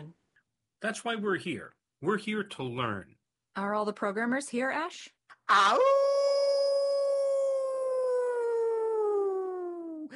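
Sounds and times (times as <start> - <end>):
speech: 0.8 - 6.0
person imitating coyote howl: 5.5 - 10.1.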